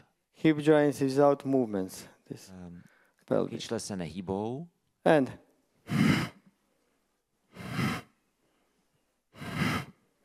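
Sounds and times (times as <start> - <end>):
speech: 0.4 - 6.0
deep breaths drawn during a breathing exercise: 5.8 - 10.2.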